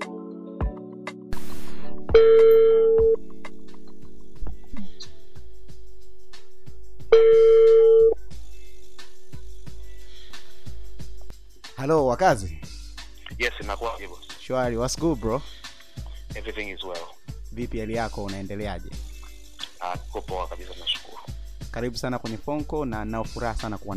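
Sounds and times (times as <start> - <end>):
speech: 2.1 - 3.0, 11.9 - 12.7, 13.4 - 15.6, 16.4 - 19.0, 19.9 - 21.0, 21.8 - 23.9
telephone ringback tone while placing a phone call: 2.2 - 3.2, 7.2 - 8.2.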